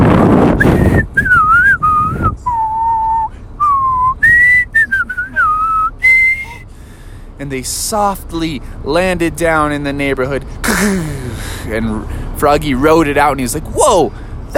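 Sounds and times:
breathy wind noise: 0.0s - 4.7s, 6.0s - 7.4s, 10.4s - 12.4s, 14.1s - 14.5s
person whistling a short wavering tune: 0.6s - 6.6s
speech: 7.5s - 14.5s.

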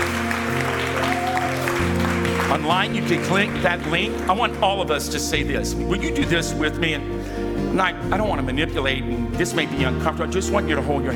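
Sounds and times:
church audience cheering and stomping during an altar call: 0.0s - 2.6s
speech: 2.5s - 11.1s.

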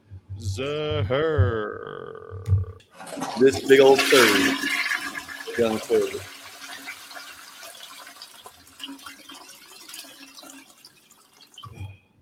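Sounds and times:
speech: 0.4s - 2.6s, 3.2s - 4.8s, 5.6s - 6.3s
toilet flushing with swirling water and gurgling drain: 2.9s - 11.7s.

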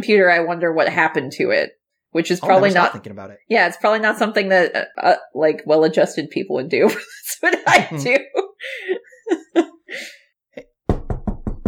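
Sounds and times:
speech: 0.0s - 10.1s
vocal sounds: 2.3s - 3.4s, 7.6s - 8.3s
laughter: 2.4s - 3.3s, 6.9s - 9.8s
knocking on a door: 10.9s - 11.6s.

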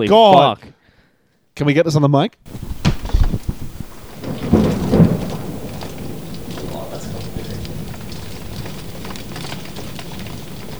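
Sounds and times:
speech: 0.0s - 0.7s, 1.6s - 2.7s
deep rumbles of thunder: 2.5s - 10.7s
heavy rain pouring outside window: 2.5s - 10.7s.

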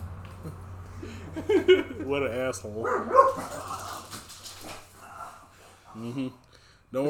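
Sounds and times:
laughter: 0.3s - 2.4s
speech: 1.3s - 3.8s, 6.0s - 7.0s
dogs barking: 2.8s - 6.1s.

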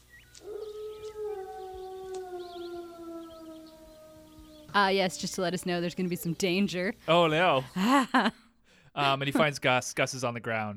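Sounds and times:
wolf howling: 0.4s - 5.7s
speech: 4.8s - 8.4s, 9.0s - 10.7s.

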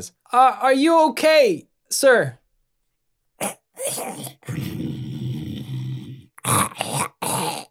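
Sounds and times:
speech: 0.0s - 2.4s, 3.4s - 4.9s
voice imitating a friar's rough rattling unhealthy-sounding snore: 3.4s - 7.6s.

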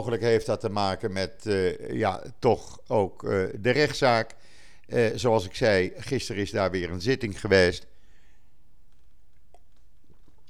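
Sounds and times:
quiet sip of water: 0.0s - 5.9s, 6.8s - 10.4s
speech: 0.0s - 7.9s
soft wet clicks: 3.8s - 5.0s, 8.7s - 10.4s
faint swallow: 8.0s - 10.4s.

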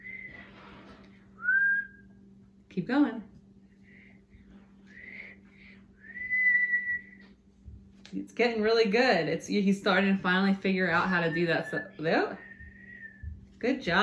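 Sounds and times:
speech: 2.8s - 3.3s, 8.1s - 12.5s, 13.6s - 14.0s
child whistling short breathy wavering notes: 6.0s - 7.2s, 11.7s - 13.4s.

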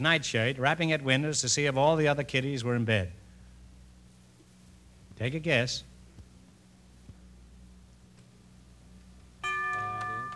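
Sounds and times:
speech: 0.0s - 3.2s, 5.2s - 5.9s
quiz show bell signalling time is up: 9.4s - 10.3s.

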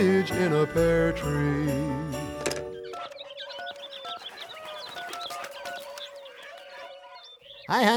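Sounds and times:
speech: 0.0s - 2.1s, 7.7s - 7.9s
birds calling and clucking: 2.2s - 7.9s.

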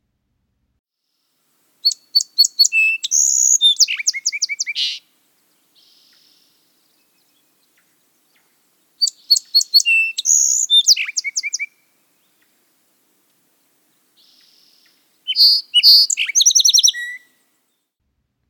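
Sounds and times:
Song Sparrow singing: 1.8s - 17.8s.

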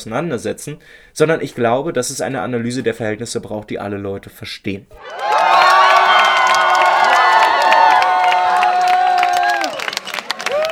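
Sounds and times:
speech: 0.0s - 5.6s
large crowd cheering and shouting at an election night party: 5.0s - 10.7s
people whooping: 5.0s - 10.7s
scattered clapping: 5.2s - 10.7s.

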